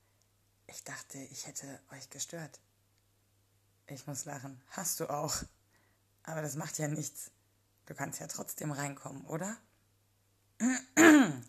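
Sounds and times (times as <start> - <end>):
speech: 0.7 - 2.7, 3.9 - 5.6, 6.3 - 9.7, 10.6 - 11.4
person clearing throat: 10.6 - 11.4.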